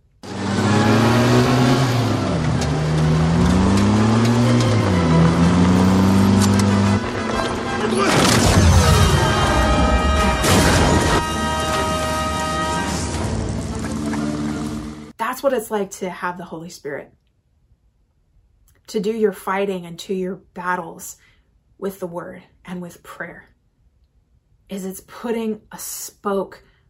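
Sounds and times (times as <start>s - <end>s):
motorcycle engines revving during a chase: 0.2s - 7.9s, 13.1s - 15.1s
loud crash: 7.0s - 14.7s
speech: 15.5s - 17.2s, 18.9s - 23.5s, 24.7s - 26.7s.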